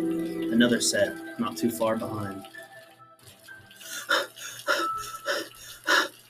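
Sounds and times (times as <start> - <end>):
speech: 0.0 - 2.6
heavy labored breathing: 3.8 - 6.2.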